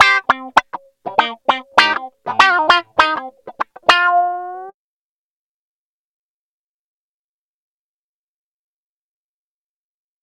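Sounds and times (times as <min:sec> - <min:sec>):
funk wah guitar: 0:00.0 - 0:04.7.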